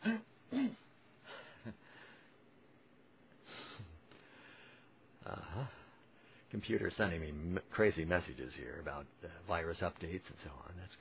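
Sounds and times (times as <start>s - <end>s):
person clearing throat: 0.0s - 0.9s
person coughing: 0.0s - 0.9s
speech: 6.6s - 10.9s.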